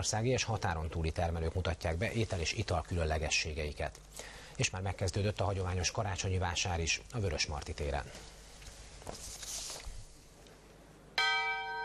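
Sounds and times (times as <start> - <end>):
speech: 0.0 - 8.4, 9.0 - 9.4
loud bell strike opening a craft food fair: 11.2 - 11.8.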